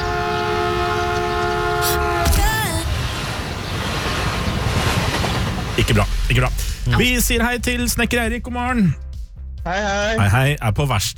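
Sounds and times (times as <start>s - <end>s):
loud sustained train horn blast of stacked tones: 0.0s - 2.4s
constant rumble of train wheels and machinery: 0.0s - 6.8s
speech: 5.9s - 9.0s, 9.6s - 11.1s.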